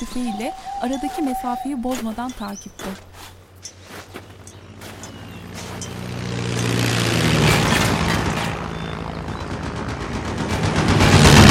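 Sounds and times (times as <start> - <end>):
speech: 0.0 - 3.4
wartime aircraft flying overhead with rumbling engine roar: 3.6 - 11.4.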